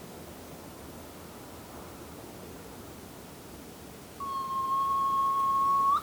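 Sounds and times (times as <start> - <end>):
faint background hiss: 0.0 - 6.0
soft-plumaged petrel Pterodroma mollis long flat whistle: 4.2 - 6.0.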